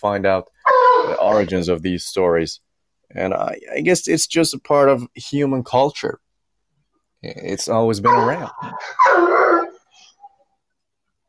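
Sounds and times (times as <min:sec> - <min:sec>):
speech: 0:00.0 - 0:00.5, 0:01.1 - 0:06.2, 0:07.2 - 0:09.6
dog howling bark: 0:00.6 - 0:01.5, 0:08.0 - 0:09.9
faint short dog yips: 0:00.7 - 0:01.4, 0:08.1 - 0:10.4.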